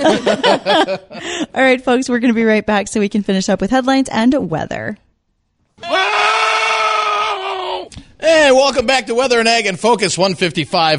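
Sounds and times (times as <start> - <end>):
laughter: 0.0 - 1.4
speech: 0.0 - 5.0, 5.8 - 6.2, 8.2 - 10.9
screaming goat sound effect played in a studio: 5.8 - 7.9.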